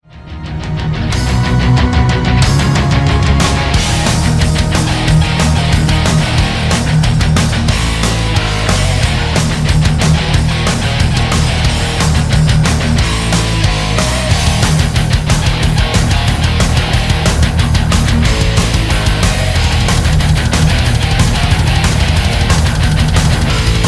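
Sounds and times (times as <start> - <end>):
palm-muted guitar: 0.2 - 23.8.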